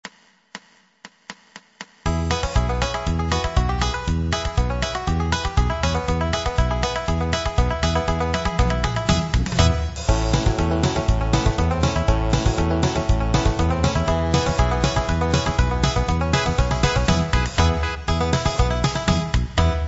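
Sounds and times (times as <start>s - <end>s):
country and western music: 2.1s - 19.8s.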